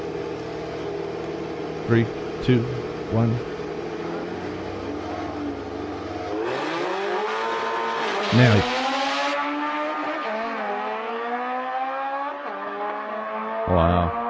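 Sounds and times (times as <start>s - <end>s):
Honda race car engine revving and accelerating away: 0.0s - 14.2s
person counting down: 1.9s - 3.5s, 8.3s - 8.6s, 13.7s - 14.2s
speech: 1.9s - 3.5s, 8.3s - 8.8s.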